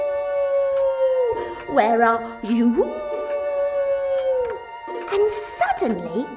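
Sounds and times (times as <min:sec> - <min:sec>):
wolf howling: 0:00.0 - 0:01.7, 0:02.8 - 0:05.1
speech: 0:01.8 - 0:03.2, 0:05.2 - 0:06.3.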